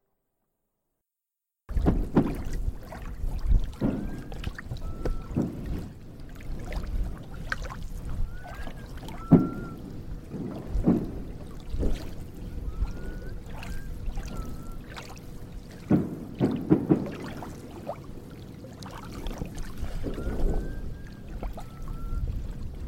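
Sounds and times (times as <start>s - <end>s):
small boat knocking on water outdoors: 1.7s - 22.0s
water splashing outdoors: 1.7s - 22.8s
faint whistles in short two-part phrases outdoors: 3.8s - 5.8s, 8.1s - 9.9s, 12.4s - 15.2s, 19.8s - 22.5s.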